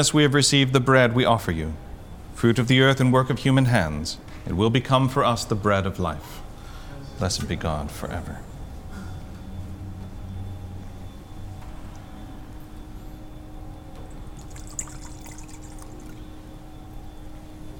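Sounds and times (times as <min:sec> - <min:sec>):
speech: 0:00.0 - 0:06.4, 0:07.2 - 0:08.5
steady low hum: 0:00.0 - 0:17.7
water poured into wine in a chalice during a church liturgy: 0:14.1 - 0:16.7.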